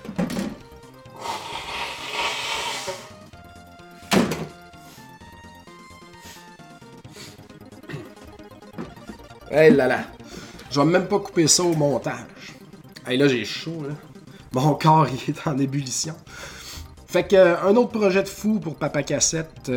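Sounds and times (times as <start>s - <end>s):
person blowing their nose: 1.1s - 3.3s
speech: 9.5s - 10.1s, 10.8s - 12.4s, 13.0s - 16.5s, 17.1s - 19.7s.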